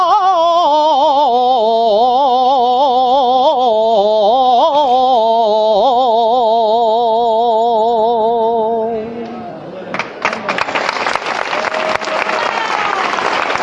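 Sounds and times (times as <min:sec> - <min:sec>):
wavering vibrato-laden sung note of a saeta: 0:00.0 - 0:09.7
crowd applause after a saeta in a Holy Week procession: 0:09.9 - 0:13.6.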